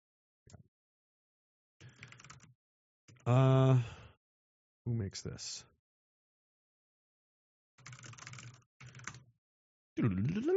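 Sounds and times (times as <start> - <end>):
typing on a computer keyboard: 1.8 - 2.5, 7.8 - 9.2
speech: 3.2 - 4.0, 4.8 - 5.7, 10.0 - 10.5.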